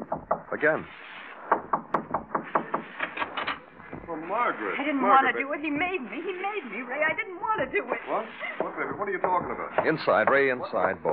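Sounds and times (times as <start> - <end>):
knocking on a door: 0.0 - 0.6, 1.5 - 3.1, 3.9 - 4.2, 8.6 - 11.1
speech: 0.6 - 1.0, 4.1 - 11.1.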